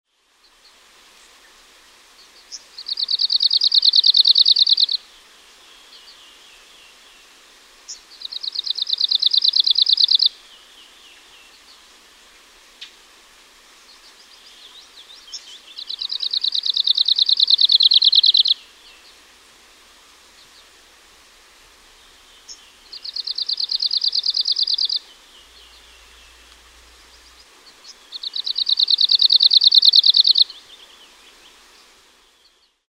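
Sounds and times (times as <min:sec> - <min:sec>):
arctic warbler singing: 0:02.2 - 0:05.0, 0:07.9 - 0:11.8, 0:13.9 - 0:19.2, 0:22.0 - 0:32.8.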